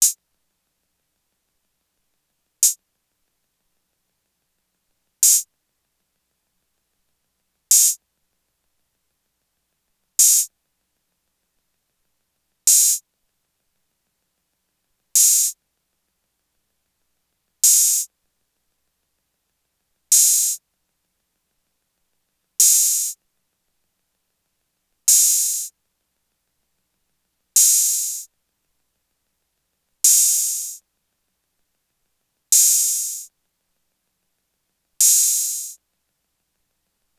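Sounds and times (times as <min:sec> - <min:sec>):
Roland TR-808 drum machine open hi-hat: 0:05.2 - 0:05.4, 0:07.7 - 0:08.0, 0:10.2 - 0:10.5, 0:12.7 - 0:13.0, 0:15.2 - 0:15.6, 0:17.6 - 0:18.1, 0:20.1 - 0:20.6, 0:22.6 - 0:23.2, 0:25.1 - 0:25.7, 0:27.6 - 0:28.3, 0:30.1 - 0:30.8, 0:32.6 - 0:33.3, 0:35.0 - 0:35.8.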